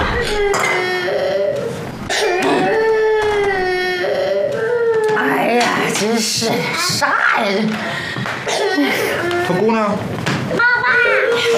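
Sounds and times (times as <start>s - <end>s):
infant crying in drawn-out wails: 0.0s - 5.8s
speech: 6.4s - 10.7s.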